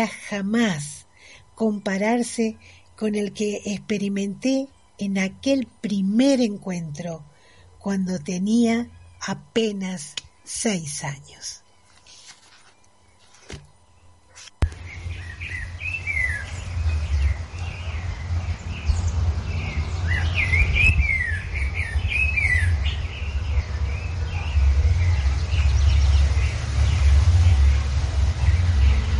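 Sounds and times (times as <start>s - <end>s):
speech: 0.0s - 1.0s, 1.6s - 11.6s
several different birds singing and answering each other: 8.2s - 11.9s, 12.7s - 29.1s
steady low rumble: 14.6s - 29.1s.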